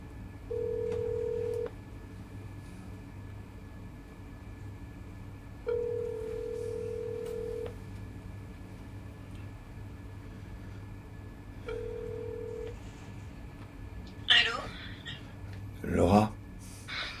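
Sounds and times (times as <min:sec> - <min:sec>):
constant low rumble: 0:00.0 - 0:17.1
telephone ring tones: 0:00.5 - 0:01.7, 0:05.7 - 0:07.7, 0:11.7 - 0:12.8.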